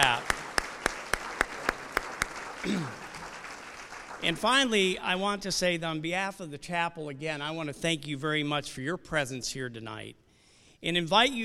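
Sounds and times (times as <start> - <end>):
sharp evenly spaced claps: 0.0 - 4.6
soft wash of applause in a room: 0.0 - 4.9
speech: 4.2 - 10.2, 10.8 - 11.4.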